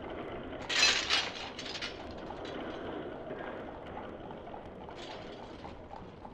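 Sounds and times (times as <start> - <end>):
castle drawbridge being lowered, clattering and rattling: 0.2 - 3.2, 4.8 - 6.2
castle drawbridge rumbling and grinding: 0.4 - 3.2.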